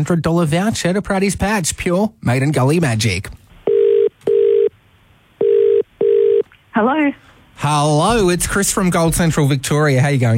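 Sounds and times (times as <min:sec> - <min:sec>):
speech: 0:00.0 - 0:03.4, 0:06.8 - 0:10.3
telephone ringback tone while calling a contest winner: 0:03.6 - 0:04.7, 0:05.4 - 0:06.4.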